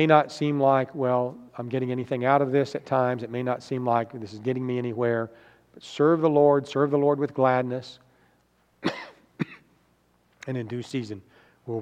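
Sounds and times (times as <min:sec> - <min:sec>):
speech: 0:00.0 - 0:08.0, 0:10.4 - 0:11.8
person coughing harshly: 0:08.8 - 0:09.8.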